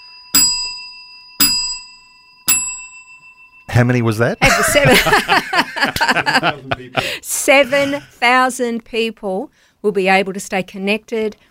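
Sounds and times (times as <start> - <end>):
bell struck with bright metallic ring: 0.0 - 6.6
speech: 3.8 - 11.4
laughter: 4.4 - 8.1.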